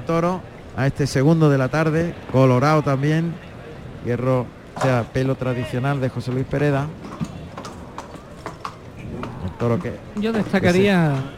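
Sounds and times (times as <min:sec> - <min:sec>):
speech: 0:00.1 - 0:03.4, 0:04.0 - 0:07.1, 0:09.6 - 0:11.3
horse hooves galloping: 0:00.2 - 0:11.3
faint voices: 0:00.3 - 0:11.3.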